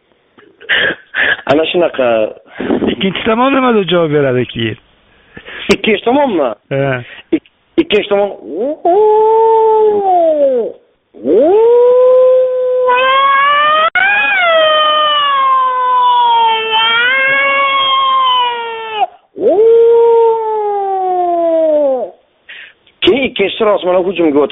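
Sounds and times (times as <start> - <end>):
speech: 0.7 - 4.9, 5.7 - 12.1, 23.2 - 24.5
wolf howling: 8.4 - 22.2.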